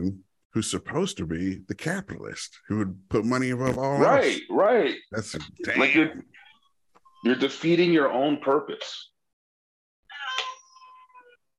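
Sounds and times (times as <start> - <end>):
speech: 0.0 - 6.4, 7.2 - 9.1
cat meowing: 10.1 - 11.4.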